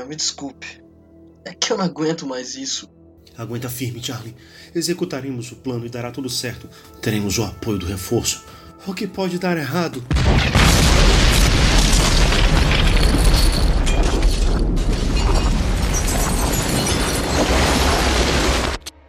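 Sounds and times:
speech: 0.0s - 0.8s, 1.4s - 10.6s
crashing debris: 10.1s - 18.9s
tank shell exploding against a building: 10.1s - 19.0s.

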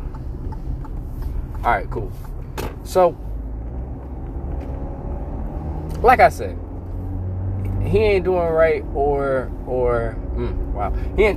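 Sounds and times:
car engine and tire drone: 0.0s - 11.3s
road traffic heard from inside a moving car: 0.0s - 11.3s
speech: 1.6s - 2.3s, 2.9s - 3.2s, 6.0s - 6.6s, 7.8s - 11.3s.

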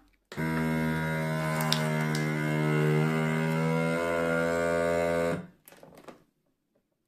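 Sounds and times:
vacuum sealer pumping air out of a bag holding a coin: 0.3s - 5.4s.

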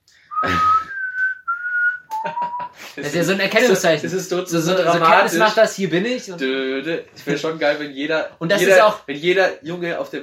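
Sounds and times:
person whistling a short four-note signal tune: 0.3s - 2.8s
speech: 0.4s - 0.8s, 3.0s - 10.2s
laughter: 2.1s - 3.0s.

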